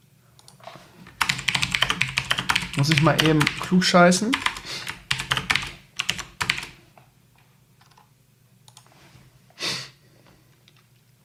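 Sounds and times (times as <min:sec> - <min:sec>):
typing comments on a computer keyboard: 0:00.4 - 0:06.8
speech: 0:02.8 - 0:04.5.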